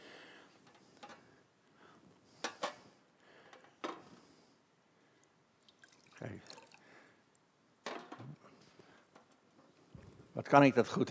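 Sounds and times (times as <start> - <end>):
water pouring into a glass: 5.7 - 6.9
speech: 10.4 - 11.0.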